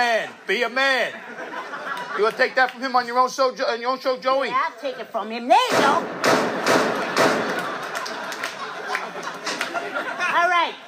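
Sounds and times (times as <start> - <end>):
speech: 0.0 - 6.9
laughter: 0.3 - 3.0, 6.5 - 10.8
sharp gunshots: 5.7 - 7.8.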